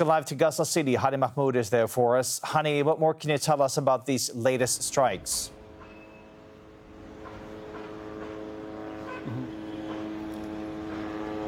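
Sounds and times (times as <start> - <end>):
speech: 0.0 - 5.6
drones hovering and buzzing over Gaza City: 4.7 - 11.4.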